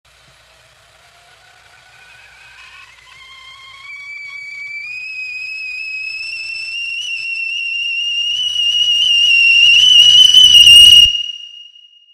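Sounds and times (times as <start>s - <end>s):
kettle whistling: 0.1s - 12.1s.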